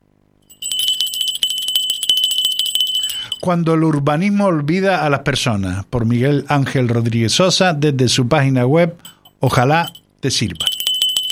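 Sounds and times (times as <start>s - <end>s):
small bell ringing: 0.5s - 3.5s, 9.0s - 11.2s
speech: 3.4s - 10.7s.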